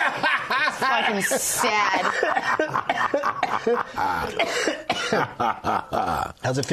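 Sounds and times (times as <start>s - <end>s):
laughter: 0.0s - 4.4s, 5.2s - 6.3s
speech: 0.9s - 6.7s
person coughing after smoking: 2.1s - 6.3s.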